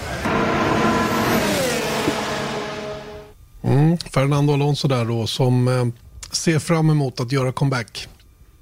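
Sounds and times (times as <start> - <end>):
V10 Formula One car engine screaming: 0.0 - 3.3
speech: 4.2 - 8.1.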